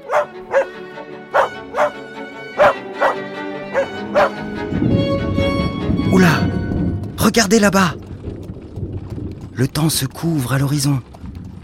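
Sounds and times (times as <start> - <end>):
dog barking excitedly: 0.0 - 2.0, 2.6 - 4.4
broad rumbling wash of noise: 4.0 - 11.6
speech: 7.4 - 8.0, 9.6 - 11.1.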